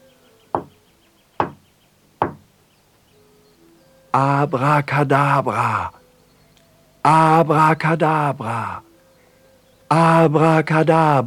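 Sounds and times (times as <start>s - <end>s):
firm knocks on a wooden door: 0.6s - 0.8s, 1.4s - 1.6s, 2.2s - 2.5s
speech: 4.1s - 6.0s, 7.0s - 8.9s, 9.9s - 11.2s.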